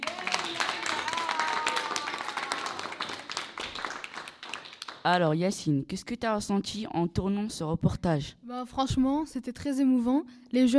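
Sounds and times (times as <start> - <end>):
applause from a sizable audience: 0.0 - 5.0
speech: 5.0 - 10.7.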